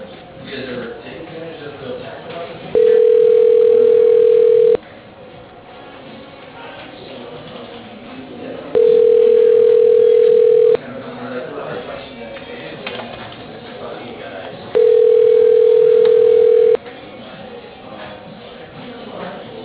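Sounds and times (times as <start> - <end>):
low murmur: 0.0 - 19.6
telephone line tones during call transfer to voicemail: 2.8 - 4.8, 8.8 - 10.8, 14.8 - 16.8.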